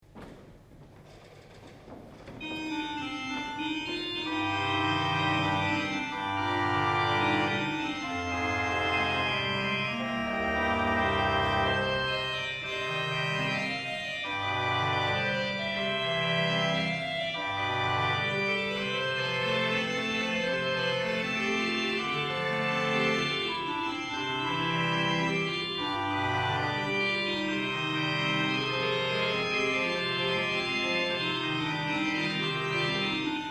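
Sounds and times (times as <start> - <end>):
organ playing zimbel, nachthorn and cromorne stops: 2.4 - 33.4.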